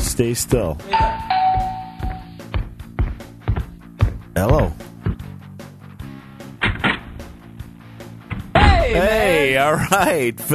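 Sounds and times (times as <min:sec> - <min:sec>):
speech: 0:00.2 - 0:01.4, 0:04.4 - 0:04.9, 0:09.0 - 0:10.5
doorbell chime: 0:00.9 - 0:02.4
dull thuds: 0:02.5 - 0:05.4, 0:06.5 - 0:09.3.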